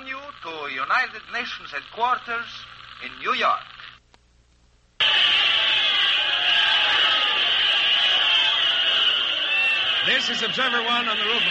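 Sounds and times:
speech: 0.4s - 3.8s, 10.0s - 11.4s
large crowd cheering and shouting: 5.0s - 11.4s.

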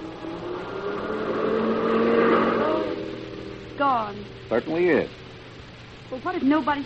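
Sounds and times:
car passing by down the road: 0.0s - 4.9s
speech: 4.5s - 5.2s, 6.1s - 6.8s.

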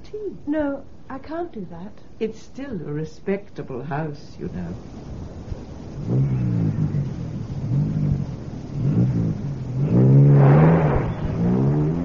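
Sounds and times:
speech: 0.1s - 5.4s
car engine revving while driving off fast: 5.9s - 12.0s.

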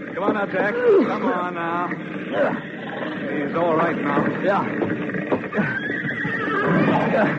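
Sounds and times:
shouting voices during a horse rescue from a fire: 0.0s - 4.8s, 6.5s - 7.3s
horse neighing during a rescue from a fire: 0.0s - 7.3s
speech: 0.2s - 5.8s, 6.6s - 7.3s.

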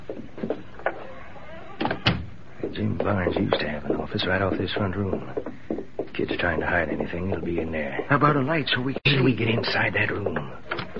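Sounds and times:
house door being shut: 1.8s - 3.5s
speech: 2.8s - 5.5s, 6.2s - 10.5s.

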